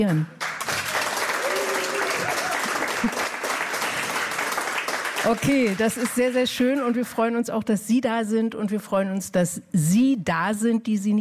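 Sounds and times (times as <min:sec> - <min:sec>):
speech: 0:00.0 - 0:00.4, 0:05.2 - 0:11.1
audience clapping at a live radio broadcast: 0:00.0 - 0:07.1.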